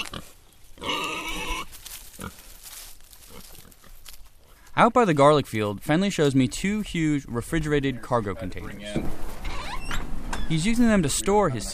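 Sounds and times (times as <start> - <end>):
pigs on an organic sustainable farm grunting: 0.0 - 2.4
speech: 4.8 - 9.3, 10.5 - 11.7.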